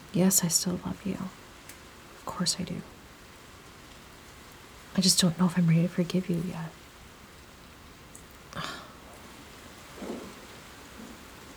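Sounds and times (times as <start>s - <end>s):
steady rain falling: 0.0s - 11.5s
speech: 0.1s - 1.4s, 2.3s - 3.0s, 5.0s - 6.8s
brief louder splashes or rumbles: 8.6s - 11.5s.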